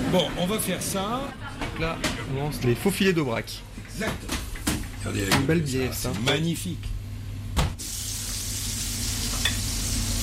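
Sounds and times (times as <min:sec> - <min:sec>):
low hum: 0:00.0 - 0:10.2
speech: 0:00.1 - 0:04.4, 0:05.0 - 0:07.0
butter sizzling in a hot frying pan: 0:07.8 - 0:10.2.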